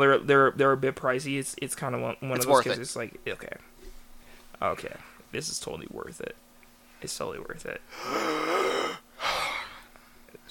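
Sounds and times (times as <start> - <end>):
speech: 0.0 - 3.7, 4.6 - 6.4, 7.0 - 8.7
person gasping for breath after talking: 7.9 - 10.0.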